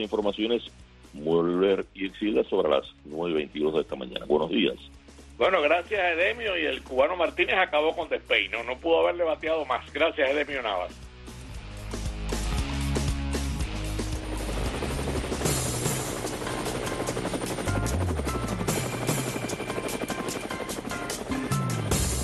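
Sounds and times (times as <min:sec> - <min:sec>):
speech: 0:00.0 - 0:11.0
helicopter rotor blades chopping with engine roar: 0:12.3 - 0:22.2.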